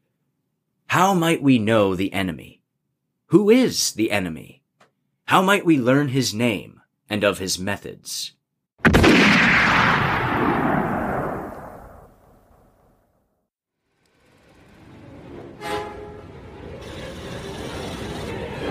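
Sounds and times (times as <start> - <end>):
speech: 1.0 - 2.6, 3.3 - 4.6, 5.3 - 8.4
gunshot with long booming echo: 8.8 - 12.2.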